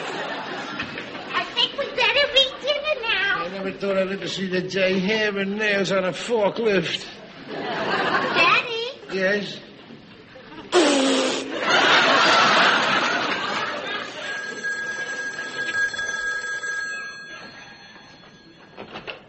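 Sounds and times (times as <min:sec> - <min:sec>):
laughter: 0:00.0 - 0:02.7, 0:07.3 - 0:08.6, 0:10.3 - 0:14.6
speech: 0:03.7 - 0:07.7, 0:09.2 - 0:09.7
ice cream vendor's bell ringing: 0:14.1 - 0:19.2.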